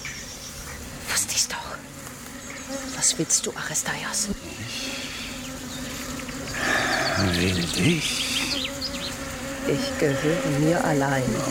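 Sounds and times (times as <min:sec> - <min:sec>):
many bees swarming in a meadow buzzing: 0:00.0 - 0:11.4
speech: 0:02.7 - 0:05.4, 0:06.6 - 0:08.4, 0:09.7 - 0:11.4.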